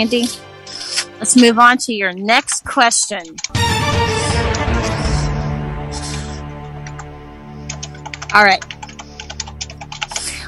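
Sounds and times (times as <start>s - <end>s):
speech: 0.0s - 0.5s, 1.2s - 4.7s, 8.3s - 8.8s
typing on a computer keyboard: 3.2s - 3.6s, 6.6s - 10.4s.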